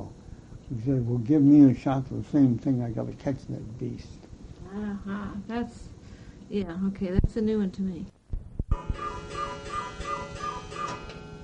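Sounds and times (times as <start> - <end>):
speech: 0.7 - 5.9, 6.5 - 8.1
old Swiss cuckoo clock striking: 8.7 - 11.4
old Swiss cuckoo clock ticking: 8.8 - 11.2.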